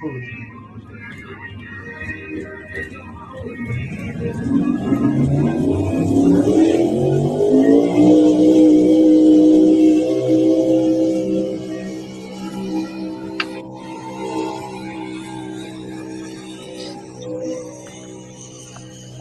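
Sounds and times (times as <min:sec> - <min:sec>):
big drag racing truck engine idling and revving: 0:00.0 - 0:19.1.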